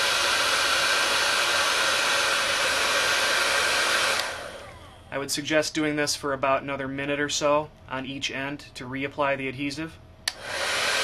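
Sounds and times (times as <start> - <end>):
hair dryer blowing: 0.0 - 5.3, 10.3 - 11.0
speech: 5.2 - 10.0.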